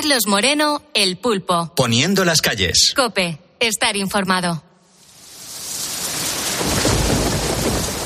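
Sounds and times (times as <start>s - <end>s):
speech: 0.0s - 4.7s
steady heavy rain: 4.9s - 8.0s
deep rumble of thunder: 6.0s - 8.0s.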